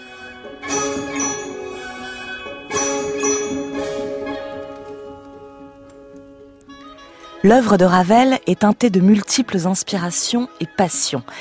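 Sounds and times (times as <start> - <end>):
slow resonant music imitating bells resounding in a valley: 0.0 - 7.3
speech: 7.4 - 11.3.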